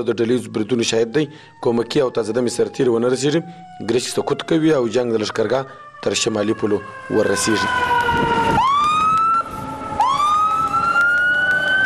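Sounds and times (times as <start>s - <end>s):
speech: 0.0s - 8.7s
ambulance siren wailing at an emergency hospital in the bazaar of Gereshk, Afghanistan: 0.0s - 11.8s
traffic noise in the bazaar of Gereshk, Afghanistan: 0.0s - 11.8s.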